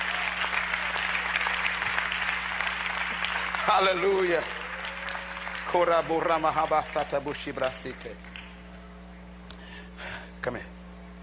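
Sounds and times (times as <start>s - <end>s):
audience applauding: 0.0s - 8.8s
faint low hum: 0.0s - 11.2s
speech: 3.7s - 4.6s, 5.7s - 8.3s, 10.4s - 10.8s.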